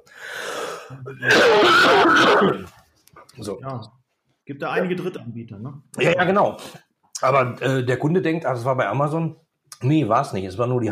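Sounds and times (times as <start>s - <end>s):
speech: 0.9s - 2.7s, 3.4s - 10.9s
person clearing throat: 1.0s - 2.7s
person coughing: 1.1s - 2.7s.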